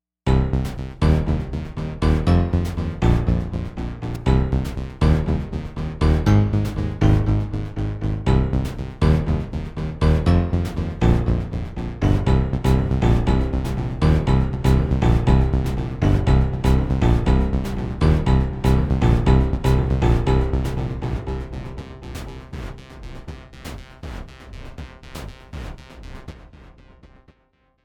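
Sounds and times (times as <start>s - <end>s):
bass pulse: 0.3s - 24.2s.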